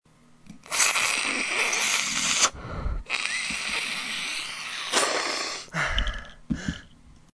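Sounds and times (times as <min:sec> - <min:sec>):
snort: 0:00.7 - 0:06.4.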